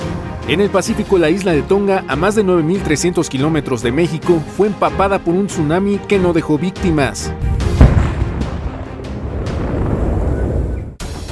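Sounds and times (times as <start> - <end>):
speech: 0.5 - 7.6
underwater volcano eruption booms near Tonga heard from Fiji: 7.4 - 11.0.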